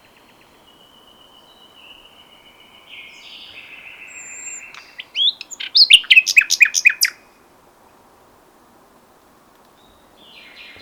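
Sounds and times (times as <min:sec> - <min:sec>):
common nightingale song with whistles and down-slurred notes: 0:00.0 - 0:07.4, 0:09.6 - 0:10.8.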